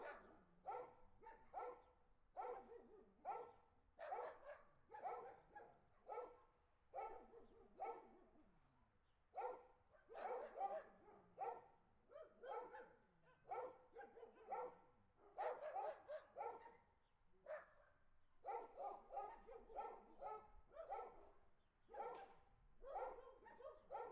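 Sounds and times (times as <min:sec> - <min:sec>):
several dogs barking on a street: 0:00.0 - 0:06.4, 0:07.0 - 0:08.2, 0:09.4 - 0:16.9, 0:17.5 - 0:24.1.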